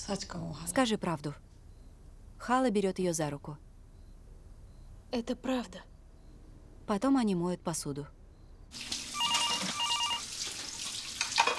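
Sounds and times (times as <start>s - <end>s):
speech: 0.0s - 1.5s, 2.4s - 3.7s, 5.1s - 5.9s, 6.9s - 9.0s
telephone ringing: 9.1s - 10.3s.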